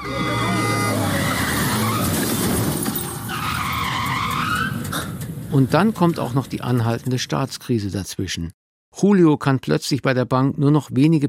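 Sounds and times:
car colliding with a taxi with a crunch: 0.0 - 6.3
car tires squealing in a skid: 0.0 - 6.4
speech: 0.1 - 0.5, 5.5 - 11.2
glass breaking: 1.3 - 3.8.

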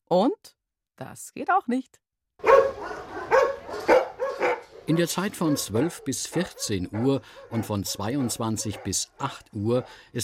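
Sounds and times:
speech: 0.1 - 3.0, 3.8 - 10.2
dog barking: 2.4 - 10.0.

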